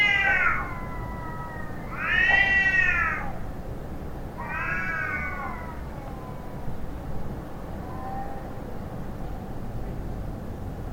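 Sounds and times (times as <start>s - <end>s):
cats fighting and caterwauling: 0.0s - 3.4s, 4.4s - 6.6s, 7.8s - 8.6s.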